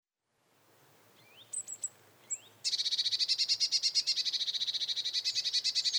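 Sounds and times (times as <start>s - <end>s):
Eurasian blue tit calling: 1.2s - 5.9s.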